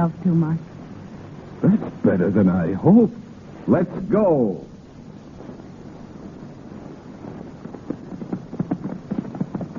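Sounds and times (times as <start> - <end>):
speech: 0.0 - 0.7, 1.6 - 4.7
horses galloping with hooves clip-clopping: 7.6 - 9.7.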